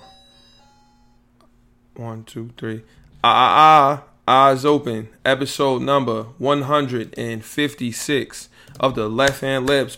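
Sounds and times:
alarm clock ringing with an electronic chime: 0.0 - 1.3
speech: 2.0 - 9.9.

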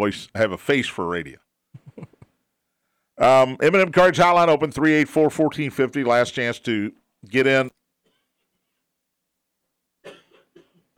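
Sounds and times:
speech: 0.0 - 1.4, 3.2 - 7.8
laughter: 1.8 - 2.4
person coughing harshly: 10.0 - 10.9.

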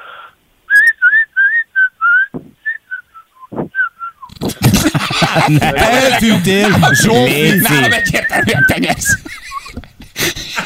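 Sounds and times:
person whistling a quick tune: 0.7 - 4.3
rustling noise: 3.5 - 4.8
laughter: 4.4 - 10.6
speech: 5.3 - 9.4.

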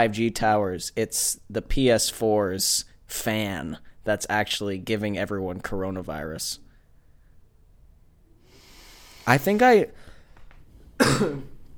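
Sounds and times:
speech: 0.0 - 6.6, 9.3 - 10.1, 11.0 - 11.5
person coughing: 11.0 - 11.6.

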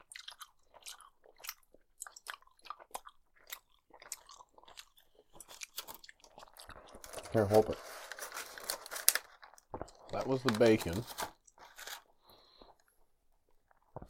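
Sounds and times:
wet chewing of a soft gummy strawberry or cherry candy slab: 0.0 - 7.7, 9.3 - 10.2, 11.4 - 14.0
speech: 7.3 - 7.9, 10.2 - 11.3.

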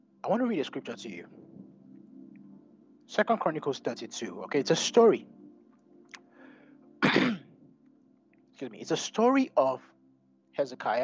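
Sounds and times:
speech: 0.2 - 1.5, 3.1 - 5.4, 8.6 - 9.9, 10.6 - 11.0
person choking and coughing: 7.0 - 7.6.

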